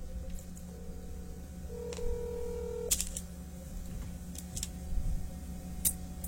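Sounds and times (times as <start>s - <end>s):
low hum: 0.0s - 6.2s
telephone dialing tones as a call is placed: 1.7s - 2.9s.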